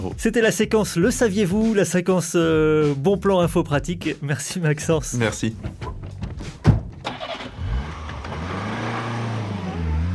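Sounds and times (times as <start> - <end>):
speech: 0.0 - 6.0
car engine cranking, starting and idling: 5.4 - 10.1.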